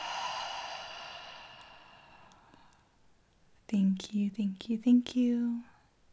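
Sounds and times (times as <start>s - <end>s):
breathing in through the nose and exhaling: 0.0s - 2.9s
speech: 3.7s - 5.7s.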